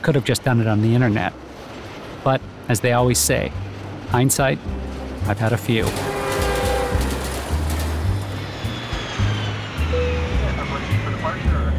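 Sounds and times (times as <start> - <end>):
speech: 0.0 - 1.5, 2.2 - 6.1
airplane cabin engine drone in flight: 4.9 - 11.7
faint indistinct murmurs from passengers: 5.3 - 8.4.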